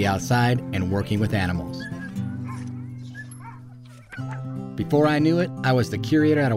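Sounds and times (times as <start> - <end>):
speech: 0.0 - 2.0, 4.8 - 6.5
team of sled dogs barking and yipping in winter: 1.4 - 4.7.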